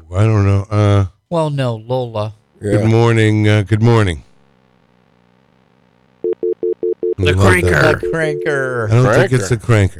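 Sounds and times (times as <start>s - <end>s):
faint low hum: 0.0s - 9.9s
speech: 0.1s - 0.6s, 1.3s - 4.3s, 7.2s - 9.9s
telephone line tone beeps: 6.2s - 8.7s.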